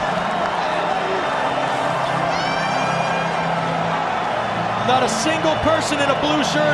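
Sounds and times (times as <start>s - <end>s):
higher whoops from the crowd: 0.0s - 4.8s
large stadium crowd cheering and shouting after a win: 0.0s - 6.7s
speech: 4.9s - 6.7s.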